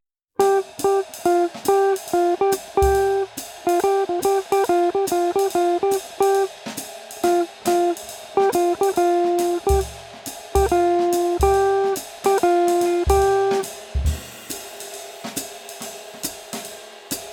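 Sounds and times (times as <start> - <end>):
swing phrasing practice play along: 0.4 - 6.5, 7.3 - 10.0, 10.6 - 14.2.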